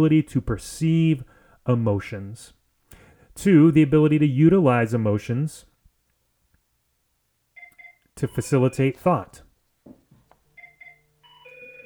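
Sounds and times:
speech: 0.0 - 2.6, 3.4 - 5.7, 8.2 - 9.4
mobile phone ringing with short electronic melody: 7.6 - 8.9, 10.6 - 11.8.

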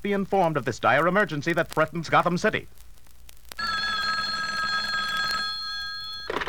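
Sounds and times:
speech: 0.0 - 2.8
telephone receiver clattering as picked up: 3.5 - 6.4
hotline telephone bell ringing: 3.6 - 6.4.

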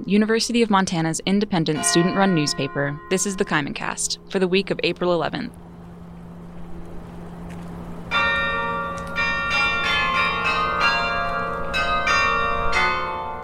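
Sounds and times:
speech: 0.0 - 5.7
low hum: 0.0 - 11.7
bell tower bells ringing: 1.7 - 6.4, 8.0 - 13.4.

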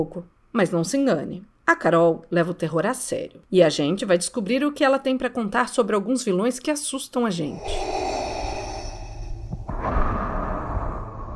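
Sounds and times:
speech: 0.0 - 8.2
heavy raspy breathing: 7.5 - 11.3.

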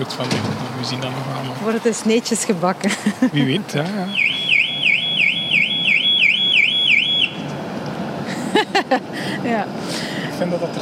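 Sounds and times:
speech: 0.0 - 4.4, 8.9 - 10.7
laughter: 2.8 - 3.6, 8.3 - 9.6
car alarm wailing with electronic whoop: 4.1 - 7.4.

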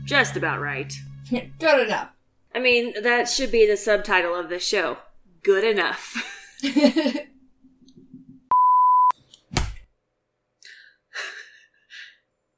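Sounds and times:
speech: 0.1 - 7.3
laughter: 6.2 - 7.3
phone being smacked with a sharp thump: 9.5 - 9.9.

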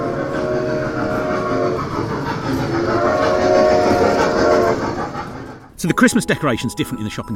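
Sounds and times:
loud sustained train horn blaring: 0.0 - 2.2, 2.8 - 4.9
train wheels rolling past: 0.0 - 7.3
speech: 5.8 - 7.3.

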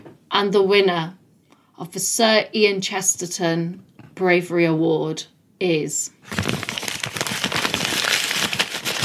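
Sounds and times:
speech: 0.4 - 1.2, 1.8 - 6.6
sheets of paper rustling and shuffling: 6.2 - 9.0.

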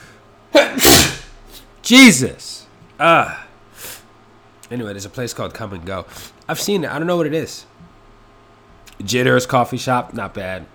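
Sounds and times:
person sneezing: 0.5 - 1.6
speech: 1.9 - 3.4, 4.7 - 7.8, 9.0 - 10.7.

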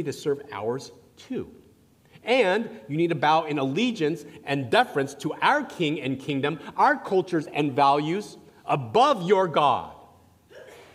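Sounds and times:
speech: 0.0 - 1.6, 2.2 - 10.0
person sneezing: 10.5 - 10.9.

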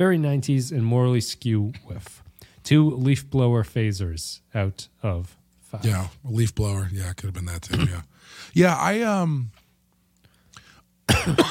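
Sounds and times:
speech: 0.0 - 9.6, 11.1 - 11.4
person coughing and clearing throat after choking on air: 7.6 - 8.1, 11.1 - 11.4
faint breathy sounds: 8.0 - 8.6.

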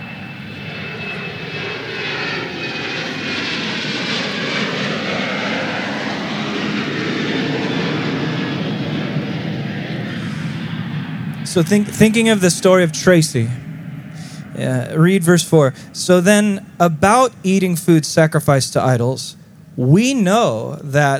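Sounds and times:
airplane engine roar passing overhead: 0.0 - 21.1
faint airplane engine whine: 0.0 - 21.1
speech: 11.6 - 13.6, 14.6 - 21.1.

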